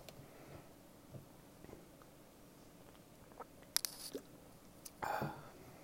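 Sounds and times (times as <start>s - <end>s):
person sipping and swallowing water: 2.9s - 5.6s
small wet mouth clicks: 3.3s - 4.3s.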